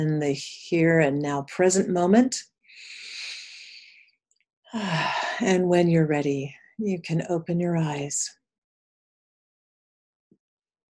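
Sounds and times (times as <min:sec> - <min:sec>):
speech: 0:00.0 - 0:03.0, 0:04.7 - 0:08.4
deep breath during a guided relaxation: 0:02.7 - 0:04.2.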